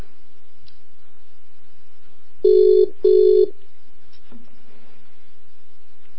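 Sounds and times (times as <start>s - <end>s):
steady low hum: 0.0s - 6.1s
mobile phone call ringback tone going unanswered: 2.5s - 3.5s.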